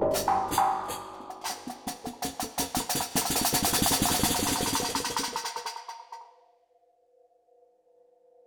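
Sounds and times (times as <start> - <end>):
rhythmic cinematic ambience with metal: 0.1 - 6.2.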